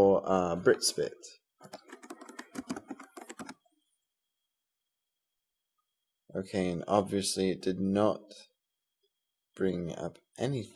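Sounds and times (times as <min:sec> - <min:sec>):
speech: 0:00.0 - 0:01.9, 0:06.3 - 0:08.5, 0:09.6 - 0:10.7
typing on a computer keyboard: 0:01.6 - 0:03.6.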